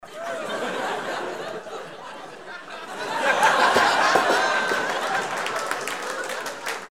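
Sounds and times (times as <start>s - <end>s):
laughter: 0.0s - 6.7s
applause: 3.4s - 6.9s.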